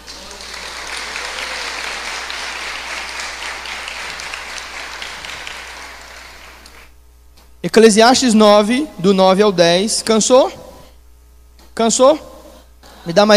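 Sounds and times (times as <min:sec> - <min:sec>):
crowd applauding: 0:00.0 - 0:06.9
speech: 0:07.6 - 0:10.6, 0:11.8 - 0:12.3, 0:13.0 - 0:13.3.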